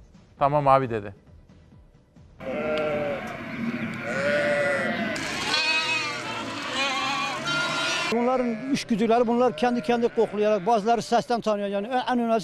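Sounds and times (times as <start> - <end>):
speech: 0.4 - 1.2, 8.1 - 12.4
busy noise of a crowded flock: 2.4 - 11.3
sheep and lambs bleating: 2.4 - 12.0.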